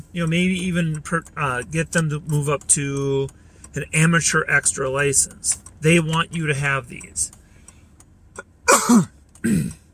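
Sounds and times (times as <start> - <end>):
speech: 0.1 - 7.4, 8.9 - 9.8
person coughing: 8.7 - 9.8.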